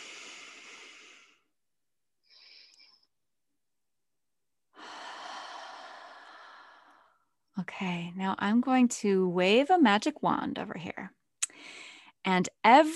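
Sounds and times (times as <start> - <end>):
slow deep breaths during a guided relaxation: 0.0 - 1.5, 4.8 - 7.2, 11.5 - 12.1
speech: 7.6 - 12.9.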